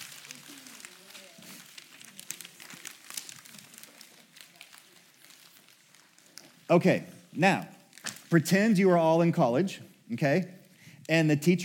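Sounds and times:
many sheets of paper being crumpled and crinkled: 0.0s - 8.7s
speech: 6.7s - 11.6s.

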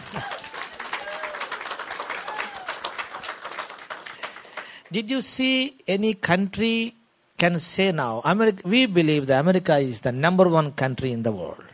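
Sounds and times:
large group applauding: 0.0s - 4.9s
speech: 4.9s - 11.7s.

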